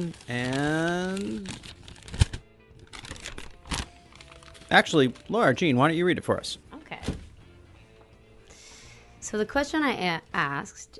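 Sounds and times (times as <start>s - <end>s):
speech: 0.0s - 1.8s, 4.7s - 6.6s, 9.3s - 10.9s
paper sheet unfolded and handled rustling: 0.0s - 5.4s.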